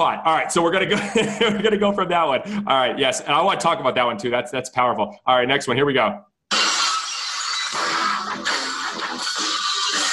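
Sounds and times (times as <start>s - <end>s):
speech: 0.0s - 6.3s
glass shattering as entrance music intro: 6.5s - 10.1s.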